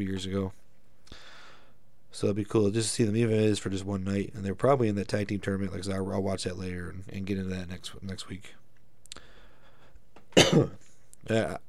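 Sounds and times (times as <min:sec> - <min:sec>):
speech: 0:00.0 - 0:01.2, 0:02.2 - 0:08.6, 0:10.4 - 0:11.6
faint noise: 0:00.0 - 0:11.6
single harsh cough from a speaker who is getting sick: 0:10.3 - 0:10.9.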